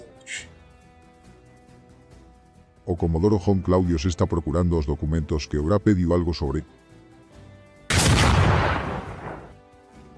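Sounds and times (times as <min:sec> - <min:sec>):
speech: 0:02.9 - 0:06.8
explosion outside: 0:07.9 - 0:09.5.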